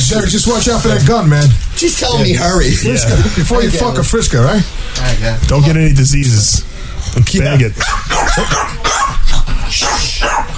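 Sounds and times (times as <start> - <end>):
speech: 0.1 - 8.8
upset dogs barking: 7.8 - 10.5.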